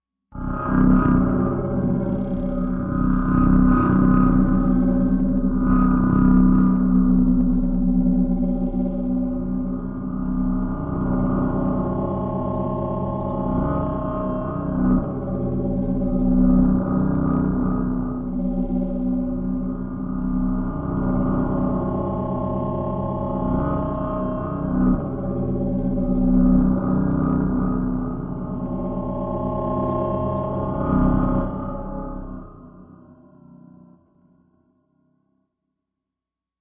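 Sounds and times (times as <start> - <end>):
low space scanner sound: 0.4 - 33.0.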